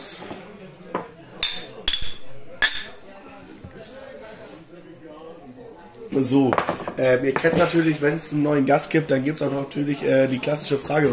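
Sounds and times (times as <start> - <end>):
soft murmur of voices: 0.0 - 11.1
glasses clinking in a toast: 1.4 - 3.0
speech: 6.1 - 11.1.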